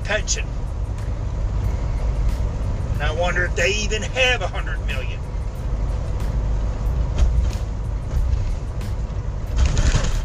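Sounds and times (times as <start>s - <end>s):
road noise from a car being driven: 0.0s - 10.2s
speech: 0.1s - 0.6s, 3.0s - 5.2s.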